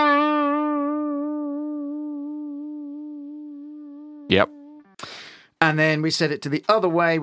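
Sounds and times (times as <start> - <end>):
sustained buzzy electric note with skewed sine-wave modulation effect: 0.0 - 5.0
speech: 4.3 - 7.2.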